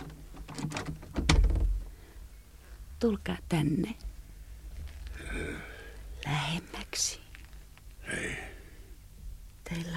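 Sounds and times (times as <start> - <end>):
door pulled shut with scraping, rattling knocks and thud: 0.0 - 1.8
speech: 3.0 - 4.0, 6.2 - 7.2.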